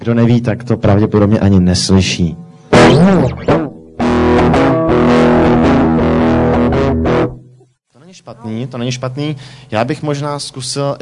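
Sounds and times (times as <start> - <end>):
speech: 0.0 - 3.6, 8.3 - 11.0
distorted electric guitar strumming chords with large hall reverb: 2.7 - 7.7.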